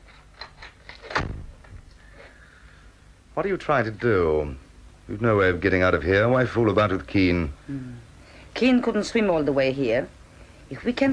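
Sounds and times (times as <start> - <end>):
door pushed shut with a solid thud: 1.0 - 1.8
speech: 3.4 - 11.1.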